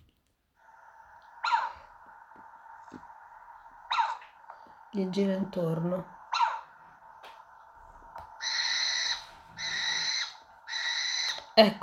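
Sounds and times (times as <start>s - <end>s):
little owl calling: 1.3s - 2.8s, 3.8s - 4.6s, 6.0s - 11.7s
little owl mewing cries: 1.4s - 1.9s, 3.8s - 4.4s, 6.2s - 7.0s, 8.3s - 11.6s
speech: 4.9s - 6.2s, 11.6s - 11.8s.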